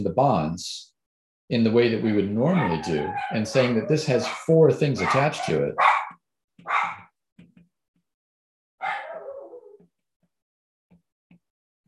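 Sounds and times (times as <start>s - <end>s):
speech: 0.0s - 0.8s, 1.5s - 5.9s
dog barking: 2.5s - 7.1s, 8.8s - 9.8s.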